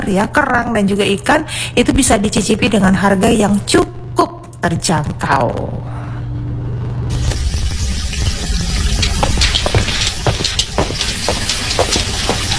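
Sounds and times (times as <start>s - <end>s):
speech: 0.0s - 5.9s
mains tap water gushing from a wide-open faucet: 7.1s - 12.5s.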